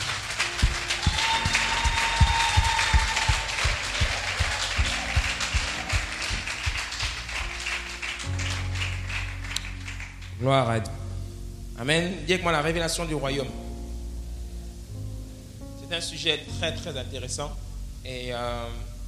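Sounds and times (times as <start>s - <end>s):
church congregation applauding during a worship service: 0.0s - 10.4s
speech: 10.4s - 11.0s, 11.8s - 13.6s, 16.0s - 18.9s.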